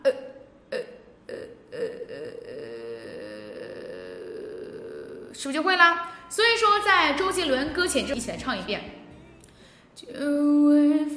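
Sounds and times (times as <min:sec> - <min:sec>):
person imitating a burp during a singing warm-up exercise: 0:00.0 - 0:05.4
speech: 0:05.4 - 0:08.9.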